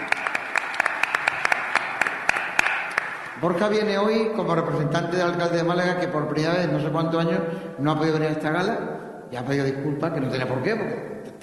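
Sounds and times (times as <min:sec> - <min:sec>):
audience applauding: 0:00.0 - 0:03.4
speech: 0:03.4 - 0:11.4.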